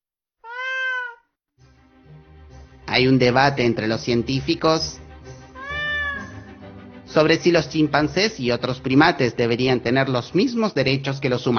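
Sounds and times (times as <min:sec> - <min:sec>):
cat meowing: 0:00.4 - 0:01.3, 0:05.6 - 0:06.6
speech: 0:02.9 - 0:05.0, 0:07.1 - 0:11.5.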